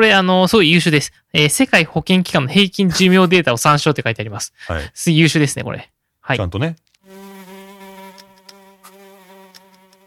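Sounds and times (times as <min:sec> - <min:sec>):
speech: 0:00.0 - 0:06.9
housefly buzzing in flight: 0:07.0 - 0:10.0.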